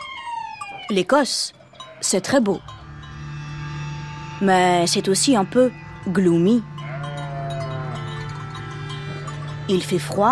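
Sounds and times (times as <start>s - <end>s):
speech: 0.9s - 2.8s, 4.4s - 6.7s, 9.7s - 10.3s
steady low hum: 1.6s - 10.3s
sheep bleating: 6.8s - 9.4s.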